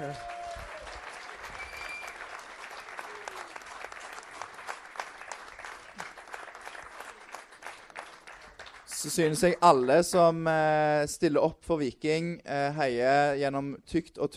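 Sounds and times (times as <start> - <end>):
speech: 0.0 - 0.3, 9.0 - 14.3
applause from a small group of supporters: 0.0 - 10.2.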